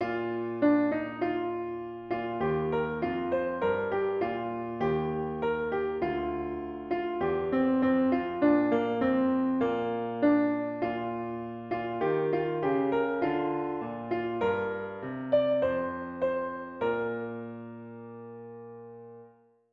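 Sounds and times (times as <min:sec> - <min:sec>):
piano piece: 0:00.0 - 0:19.5.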